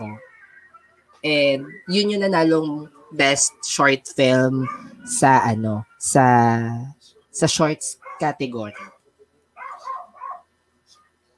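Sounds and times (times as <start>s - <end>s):
speech: 1.2s - 8.9s
dog barking sharply: 4.6s - 5.1s, 8.0s - 9.0s, 9.6s - 11.1s.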